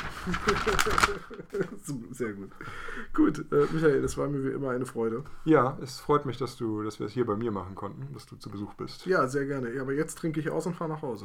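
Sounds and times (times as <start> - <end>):
sheet of paper note crinkled and rustled: 0.0 - 1.9
laughter: 0.0 - 2.4
speech: 0.2 - 11.2.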